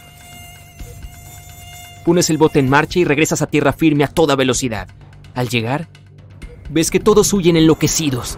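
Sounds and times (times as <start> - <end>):
high-pitched mosquito whine: 0.0 - 3.1
speech: 2.0 - 6.0, 6.7 - 8.3.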